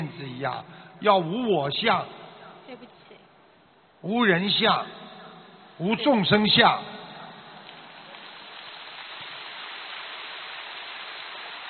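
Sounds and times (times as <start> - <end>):
speech: 0.1 - 3.0, 4.0 - 5.0, 5.8 - 7.0
sustained applause from a large audience: 7.7 - 11.6.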